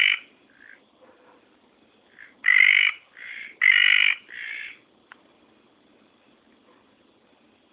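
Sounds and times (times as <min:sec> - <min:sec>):
red tree frog calling, Litoria rubella: 0:00.0 - 0:00.9, 0:02.1 - 0:04.9.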